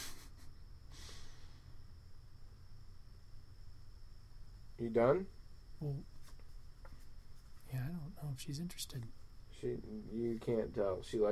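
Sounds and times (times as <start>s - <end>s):
quiet hum with a faint steady tone: 0.0s - 11.3s
cat sniffing close to the microphone: 0.9s - 1.5s
speech: 4.8s - 6.2s, 7.7s - 11.3s.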